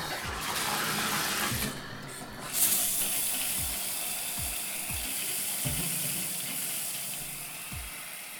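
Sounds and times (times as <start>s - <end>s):
shower head spray running: 0.0s - 8.3s.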